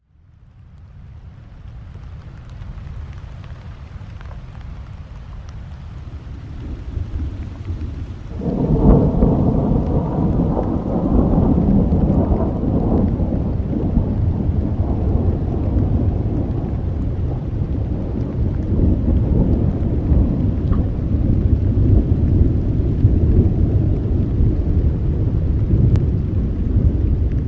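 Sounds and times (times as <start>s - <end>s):
rain: 0.0s - 27.4s
thunder: 6.5s - 27.4s.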